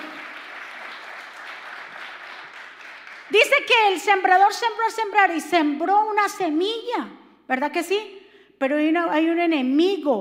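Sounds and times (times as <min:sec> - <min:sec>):
large crowd applauding: 0:00.0 - 0:03.6
speech: 0:03.3 - 0:10.1.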